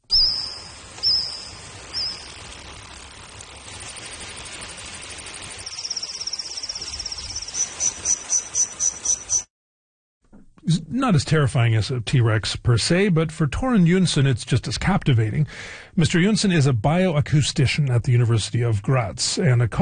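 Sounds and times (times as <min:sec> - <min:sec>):
recreated chirping of Jurassic-era insects: 0:00.1 - 0:09.5
speech: 0:11.0 - 0:19.8.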